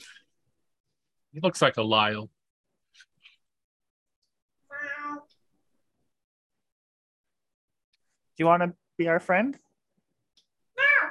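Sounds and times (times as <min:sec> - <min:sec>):
speech: 0:01.3 - 0:02.4, 0:08.4 - 0:09.7
cat meowing: 0:04.7 - 0:05.3, 0:10.8 - 0:11.0.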